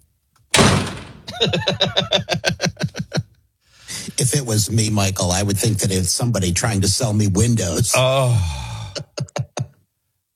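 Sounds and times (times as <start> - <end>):
sharp noisy thud: 0.6 - 1.4
laughter: 1.3 - 3.3
speech: 1.4 - 2.7, 4.2 - 8.7.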